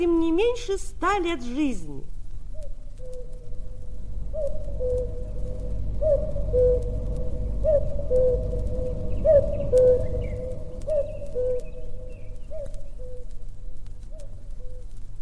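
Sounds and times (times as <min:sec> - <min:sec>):
speech: 0:00.0 - 0:02.2, 0:06.0 - 0:07.0, 0:07.6 - 0:10.4
low rumbling outdoor background: 0:00.0 - 0:15.2
common cuckoo calling: 0:02.5 - 0:07.0, 0:07.6 - 0:13.4, 0:14.0 - 0:14.9.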